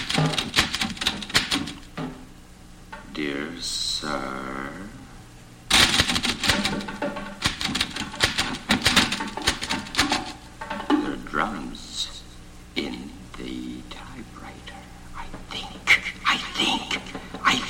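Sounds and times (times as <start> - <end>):
typewriter keystrokes: 0.0 - 1.9, 5.7 - 10.8
person speaking: 3.0 - 5.2, 5.8 - 17.6.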